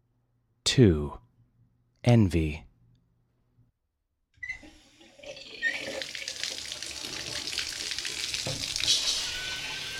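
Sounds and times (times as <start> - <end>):
speech: 0.8 - 1.2, 2.1 - 2.7
water spraying from a shower: 5.6 - 9.9.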